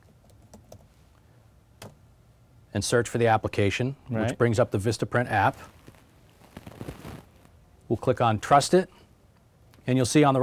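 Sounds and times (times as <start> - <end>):
typing a search term on a computer keyboard: 0.0 - 0.9
speech: 2.8 - 5.8, 7.9 - 9.0, 9.8 - 10.4.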